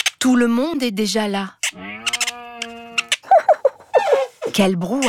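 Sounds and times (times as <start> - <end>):
speech: 0.2 - 2.0, 4.6 - 5.0
cat meowing: 1.7 - 3.1.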